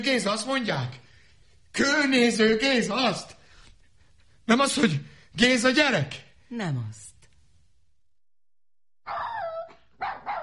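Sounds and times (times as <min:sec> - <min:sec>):
speech: 0:00.0 - 0:01.0, 0:01.8 - 0:03.4, 0:04.5 - 0:07.1
dogs barking in the yard: 0:09.0 - 0:10.4.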